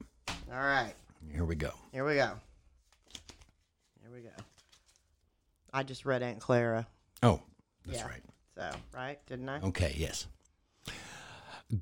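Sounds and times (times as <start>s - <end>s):
speech: 0.5s - 2.5s, 4.1s - 4.5s, 5.7s - 11.0s, 11.7s - 11.8s
cards being shuffled: 2.8s - 5.3s.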